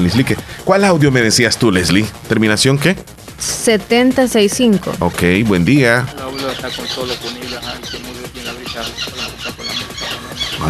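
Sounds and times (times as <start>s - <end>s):
speech: 0.0s - 8.1s
dense flock of parakeets squawking and chattering: 5.6s - 10.6s.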